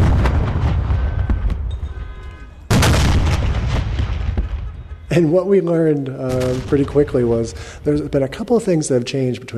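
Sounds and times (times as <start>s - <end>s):
cannon fire at the reopening of an officers' club: 0.0s - 1.7s, 2.7s - 5.0s, 6.3s - 7.9s
speech: 5.2s - 9.5s.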